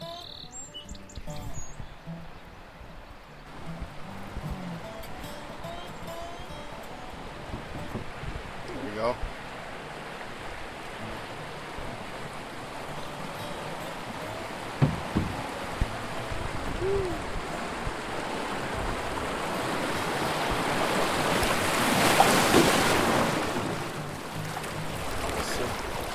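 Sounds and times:
small waves washing and lapping: 0:00.0 - 0:26.1
wind over the water: 0:01.2 - 0:26.1
faint knocks: 0:07.4 - 0:08.4, 0:14.7 - 0:16.0.

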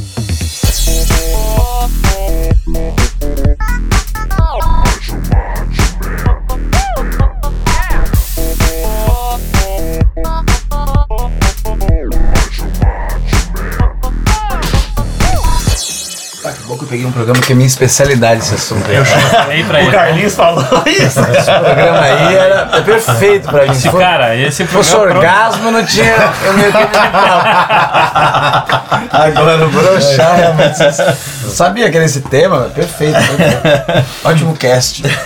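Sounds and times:
loud upbeat podcast intro jingle with driving beat: 0:00.0 - 0:12.6, 0:13.8 - 0:18.0
speech: 0:17.2 - 0:35.2
laughter: 0:18.2 - 0:31.4, 0:32.8 - 0:34.2, 0:35.0 - 0:35.2.

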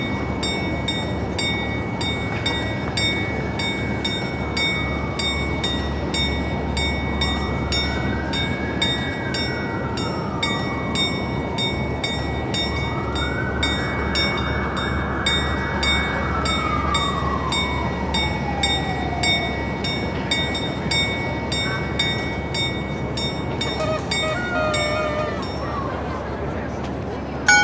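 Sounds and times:
rail vehicle rumble in Prague: 0:00.0 - 0:27.6
faint voices: 0:21.4 - 0:27.6.

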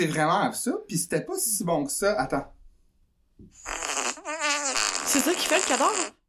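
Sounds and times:
speech: 0:00.0 - 0:02.6, 0:03.4 - 0:03.9, 0:05.2 - 0:06.2
long buzzy fart with sputtering pitch: 0:03.6 - 0:06.2.

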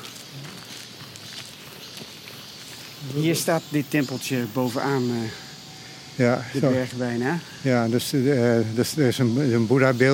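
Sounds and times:
footsteps crunching uphill on a rough mountain path under trees: 0:00.0 - 0:05.5
constant hiss of outdoor noise: 0:00.0 - 0:10.1
speech: 0:03.0 - 0:05.4, 0:06.2 - 0:10.1.

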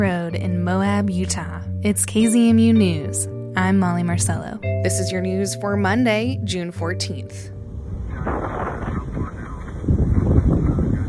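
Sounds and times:
speech: 0:00.0 - 0:07.5
blustery gusts of wind during a wildfire: 0:07.6 - 0:11.0.

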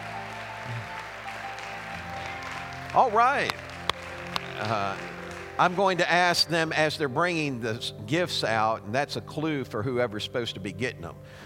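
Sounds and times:
congregation applauding: 0:00.0 - 0:06.5
speech: 0:02.9 - 0:03.6, 0:04.6 - 0:11.4.

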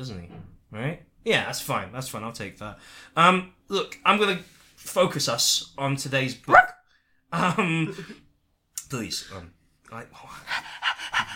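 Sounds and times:
speech: 0:00.0 - 0:08.2, 0:08.9 - 0:10.9
person imitating a dog's panting: 0:10.5 - 0:11.3.

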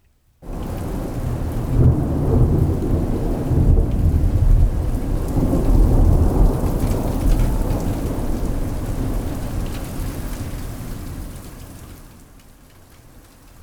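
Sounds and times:
deep rolling thunder: 0:00.4 - 0:09.6
heavy rain pouring: 0:00.4 - 0:11.6.

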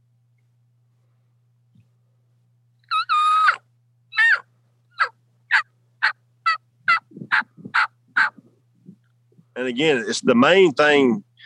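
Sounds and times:
faint low hum: 0:00.0 - 0:11.4
raspy turkey yelps on a diaphragm mouth call: 0:02.8 - 0:08.4
speech: 0:09.6 - 0:11.3.

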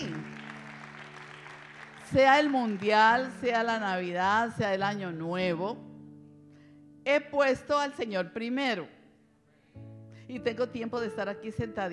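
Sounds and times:
audience applause: 0:00.0 - 0:03.0
speech: 0:02.1 - 0:05.9, 0:07.1 - 0:09.0, 0:09.8 - 0:11.9.

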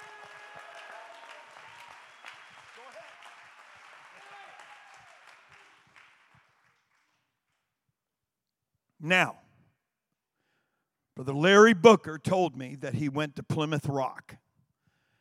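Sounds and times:
audience applauding: 0:00.0 - 0:07.8
speech: 0:09.0 - 0:09.4, 0:11.2 - 0:14.4.

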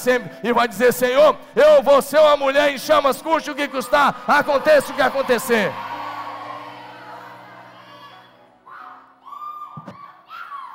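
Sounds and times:
speech: 0:00.0 - 0:05.9
large audience of women shouting: 0:04.1 - 0:10.7.

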